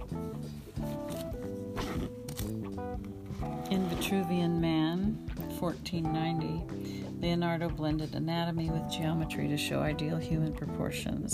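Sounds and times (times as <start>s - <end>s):
steady tonal music: 0.0s - 11.3s
book page turning: 0.7s - 4.2s
speech: 3.7s - 11.3s.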